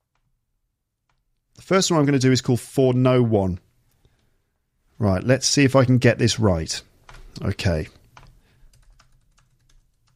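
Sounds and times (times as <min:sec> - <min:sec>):
speech: 0:01.7 - 0:03.7, 0:05.0 - 0:08.0
typing on a computer keyboard: 0:07.1 - 0:07.4, 0:08.1 - 0:10.1.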